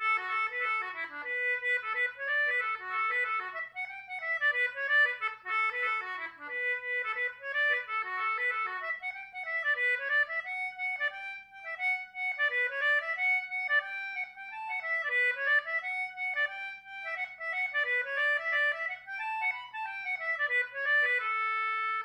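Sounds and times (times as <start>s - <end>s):
Celtic button accordion: 0.0s - 22.0s.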